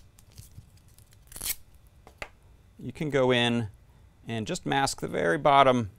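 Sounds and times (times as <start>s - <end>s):
gaffer's tape ripping off the roll: 0.0s - 1.8s
speech: 2.8s - 5.9s.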